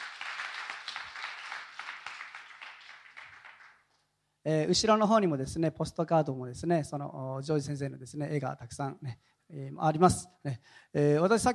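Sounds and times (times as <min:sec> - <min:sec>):
applause from many hands at a Christian worship gathering: 0:00.0 - 0:03.9
speech: 0:04.4 - 0:11.5.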